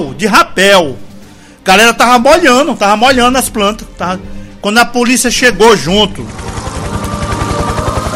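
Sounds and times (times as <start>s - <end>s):
speech: 0.2s - 1.0s, 1.6s - 6.4s
helicopter rotor noise: 5.6s - 8.1s.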